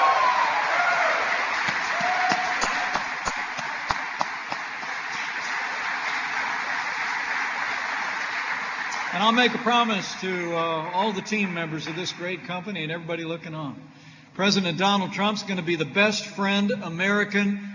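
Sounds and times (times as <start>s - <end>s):
large crowd applauding in Michigan: 0.0s - 13.0s
sharper individual claps: 1.5s - 9.3s
speech: 9.2s - 17.7s.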